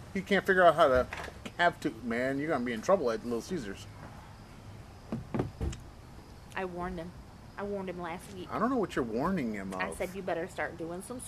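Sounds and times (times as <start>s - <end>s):
speech: 0.2s - 4.0s, 6.6s - 11.2s
firm knocks on a door: 5.1s - 5.8s.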